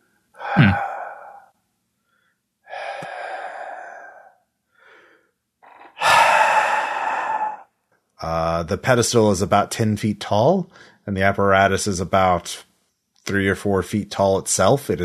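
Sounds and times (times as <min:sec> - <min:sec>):
slow heavy rhythmic breathing: 0:00.4 - 0:07.7
speech: 0:08.3 - 0:12.7, 0:13.3 - 0:15.0.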